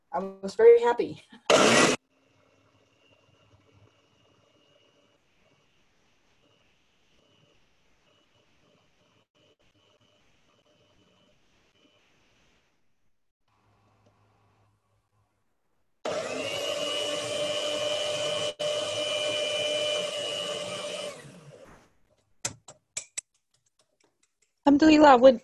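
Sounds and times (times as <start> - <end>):
speech: 0.2 - 2.0, 24.7 - 25.4
electric coffee and spice grinder grinding herbs: 1.5 - 5.2, 16.0 - 21.6.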